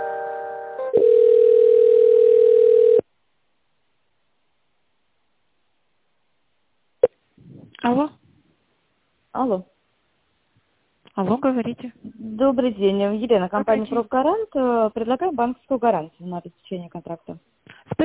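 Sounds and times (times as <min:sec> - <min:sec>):
telephone line tones while a call is being transferred: 0:00.7 - 0:03.1
speech: 0:09.5 - 0:09.7, 0:11.2 - 0:18.0.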